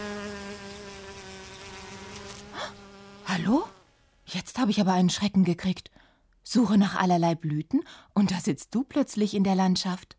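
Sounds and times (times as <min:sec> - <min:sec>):
honeybee buzzing: 0:00.0 - 0:04.3
speech: 0:03.4 - 0:05.9, 0:06.5 - 0:10.1.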